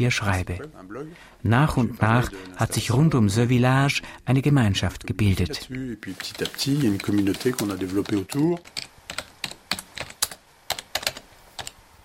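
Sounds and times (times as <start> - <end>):
speech: 0.0 - 8.9
computer keyboard keys clicking including the page-down key: 6.2 - 12.0.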